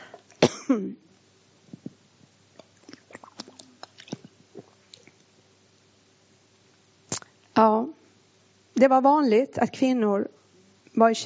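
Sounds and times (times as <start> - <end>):
speech: 0.7 - 1.1, 7.6 - 8.0, 8.8 - 10.4, 11.0 - 11.2
person drinking water: 1.8 - 5.3, 7.1 - 7.5
small mouth clicks: 2.6 - 5.3, 7.1 - 7.4
swallows: 2.6 - 5.3, 7.1 - 7.3.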